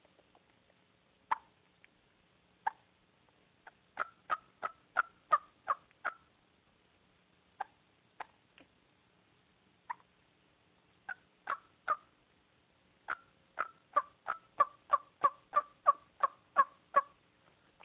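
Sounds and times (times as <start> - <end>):
hen turkey tree call yelps from a hen in a tree: 3.6 - 6.3, 11.1 - 12.1, 13.1 - 17.2.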